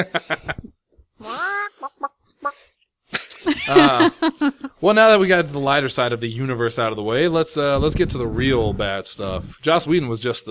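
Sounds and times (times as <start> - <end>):
speech: 0.0 - 0.5, 3.7 - 10.4
chicken squawk: 1.2 - 2.6
laughter: 3.2 - 4.7.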